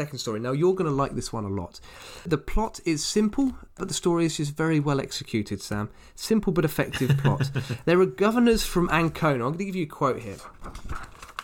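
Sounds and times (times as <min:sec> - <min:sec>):
speech: 0:00.0 - 0:11.1
laughter: 0:06.8 - 0:07.9
paper pages being turned: 0:10.0 - 0:11.4.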